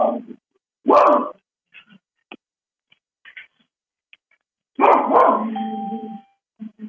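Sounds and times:
dog barking: 0.8s - 1.4s, 4.8s - 5.6s.

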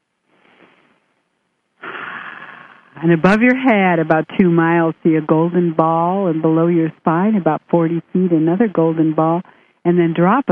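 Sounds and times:
slow deep breathing during a guided relaxation exercise: 1.8s - 3.0s
speech: 3.0s - 10.5s.

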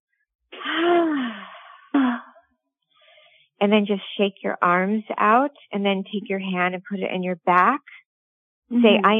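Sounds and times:
deep breaths in a guided breathing exercise: 0.6s - 2.0s, 3.0s - 3.4s
speech: 3.6s - 8.0s, 8.7s - 9.1s.

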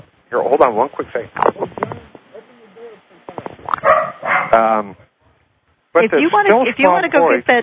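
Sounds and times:
speech: 0.3s - 1.6s, 4.5s - 5.0s, 6.0s - 7.6s
dog barking in rapid loud bursts: 3.8s - 4.7s.

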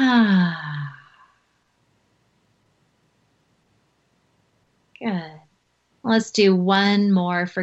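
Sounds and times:
long audible exhale voiced as a sigh: 0.0s - 1.2s
speech: 0.1s - 0.6s, 6.1s - 7.6s.

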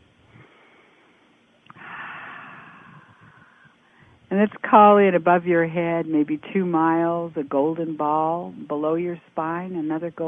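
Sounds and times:
deep breath during a guided breathing exercise: 0.3s - 4.2s
speech: 4.4s - 10.2s.

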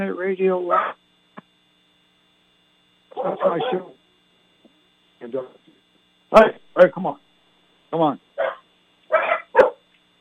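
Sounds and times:
speech: 0.0s - 1.0s, 3.2s - 4.0s, 5.2s - 5.6s, 6.3s - 7.2s, 7.9s - 8.6s
dog barking: 0.7s - 1.0s, 3.1s - 3.9s, 8.4s - 9.8s.

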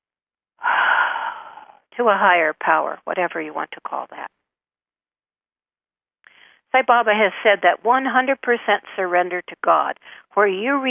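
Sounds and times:
deep breath: 0.6s - 1.9s, 6.2s - 6.7s
speech: 2.0s - 4.4s, 6.7s - 10.8s.

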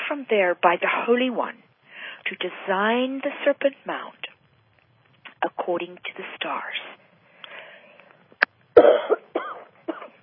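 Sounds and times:
speech: 0.1s - 1.6s, 2.2s - 4.3s, 5.4s - 7.0s, 8.8s - 9.2s
phlegm-clearing chesty coughs: 8.8s - 10.2s.

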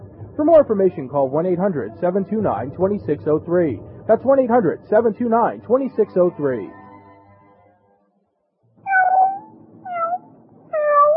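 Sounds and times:
speech: 0.4s - 6.8s
cat meowing: 8.9s - 11.1s.

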